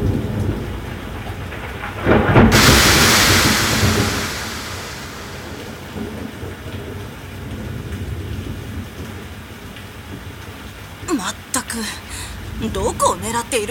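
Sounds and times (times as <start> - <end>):
thunderclap from a storm overhead: 0.0 - 6.6
rain pouring: 0.0 - 13.6
speech: 13.4 - 13.6.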